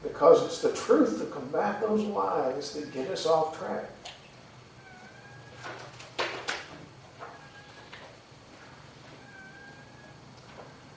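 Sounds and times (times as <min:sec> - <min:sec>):
low steady hum: 0:00.0 - 0:10.9
speech: 0:00.2 - 0:04.2
cat-like raspy squeaky snoring: 0:04.8 - 0:05.6, 0:08.7 - 0:10.8.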